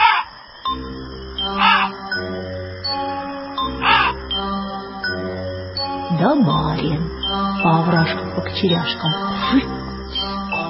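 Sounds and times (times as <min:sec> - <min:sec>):
crow cawing: 0:00.0 - 0:00.4, 0:01.5 - 0:02.1, 0:03.8 - 0:04.2
steady low sustained musical drone: 0:00.7 - 0:10.6
speech: 0:06.2 - 0:09.7.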